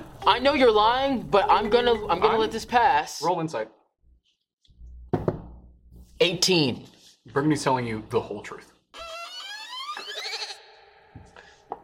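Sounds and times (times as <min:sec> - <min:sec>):
speech: 0:00.2 - 0:03.8, 0:06.2 - 0:08.7
goat bleating: 0:09.7 - 0:10.7.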